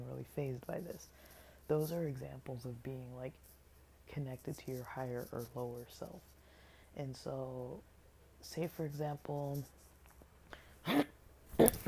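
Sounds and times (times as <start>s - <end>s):
speech: 0.1s - 3.5s, 4.1s - 6.3s, 7.0s - 9.8s, 10.8s - 11.1s
person with an irritated throat clearing throat: 10.8s - 11.8s.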